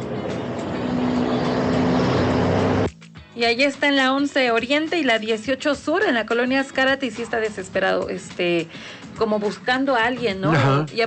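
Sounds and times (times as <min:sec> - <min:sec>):
cars passing fast on street: 0:00.0 - 0:02.9
street traffic engine and road rumble: 0:00.0 - 0:02.9
speech: 0:03.4 - 0:11.0.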